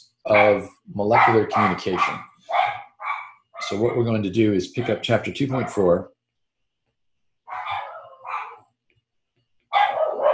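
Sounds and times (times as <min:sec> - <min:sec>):
speech: 0:00.0 - 0:02.8, 0:03.6 - 0:06.1
dog barking: 0:00.3 - 0:03.7, 0:04.8 - 0:05.9, 0:07.5 - 0:08.6, 0:09.7 - 0:10.3.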